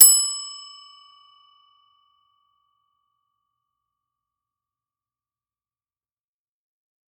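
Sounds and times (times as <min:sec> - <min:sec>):
bell ding resonating: 0:00.0 - 0:02.0.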